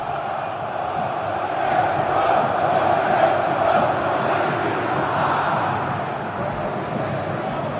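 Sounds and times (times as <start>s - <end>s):
football fans chanting in a stadium before a match: 0.0s - 7.7s.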